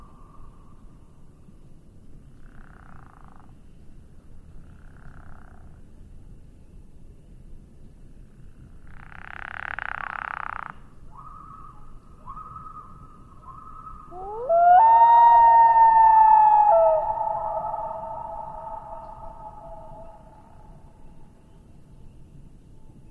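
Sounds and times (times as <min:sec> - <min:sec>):
common loon giving hoot-like notes and a rising wail: 0:12.2 - 0:21.0
rushing noise: 0:15.4 - 0:20.9.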